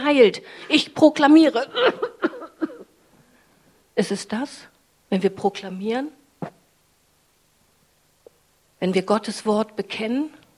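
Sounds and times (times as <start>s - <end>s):
speech: 0.1s - 2.3s, 4.0s - 6.6s, 8.8s - 10.4s
person coughing: 1.7s - 2.9s.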